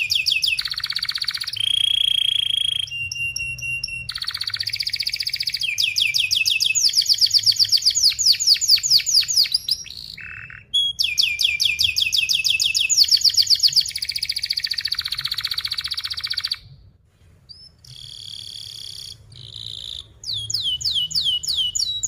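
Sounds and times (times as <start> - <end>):
canary singing with quick down-slurred notes and rolling trills: 0.0 - 16.8, 17.5 - 22.0.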